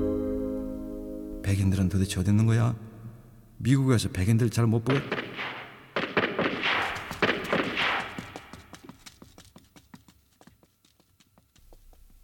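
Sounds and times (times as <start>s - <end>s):
speech: 1.6s - 2.9s, 3.6s - 5.5s
gunshots at night from an apartment alley in Koreatown Los Angeles: 4.8s - 8.7s.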